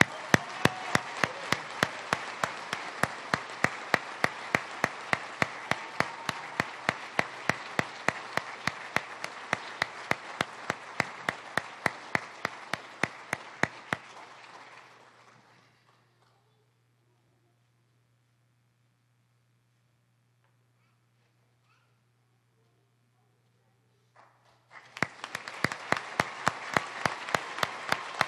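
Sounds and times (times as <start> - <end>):
audience applauding at a police department award ceremony: 0.0 - 16.0, 24.7 - 28.2.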